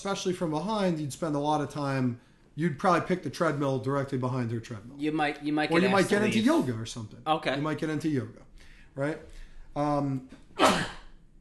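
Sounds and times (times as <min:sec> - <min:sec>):
speech: 0:00.0 - 0:10.9
person sneezing: 0:10.6 - 0:11.2.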